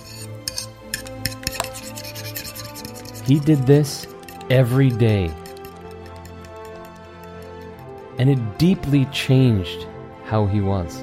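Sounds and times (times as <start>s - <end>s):
dishes being scrubbed: 0.0s - 7.8s
dishes clinking and knocking: 0.4s - 1.9s
speech: 3.3s - 5.4s, 8.2s - 11.0s.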